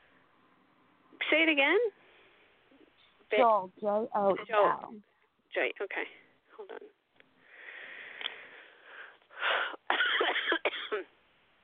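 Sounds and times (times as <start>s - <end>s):
speech: 1.3s - 2.0s, 3.3s - 7.0s
heavy breathing: 7.4s - 9.8s
person coughing harshly: 9.9s - 11.1s.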